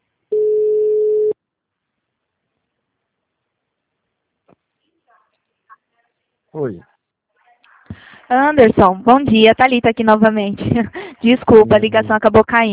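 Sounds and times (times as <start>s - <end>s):
telephone line tone while a call is placed: 0.3s - 1.4s
speech: 6.5s - 6.9s, 8.3s - 12.7s.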